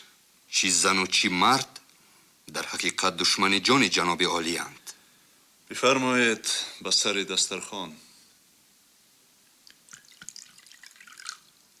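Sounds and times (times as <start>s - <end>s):
speech: 0.6s - 1.8s, 2.5s - 4.9s, 5.7s - 8.1s
water poured into a cup or glass: 9.6s - 11.7s.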